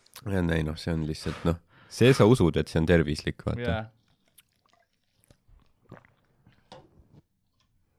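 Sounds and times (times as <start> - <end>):
speech: 0.2 - 4.0
person slurping and gulping the last of coconut water: 3.9 - 7.9.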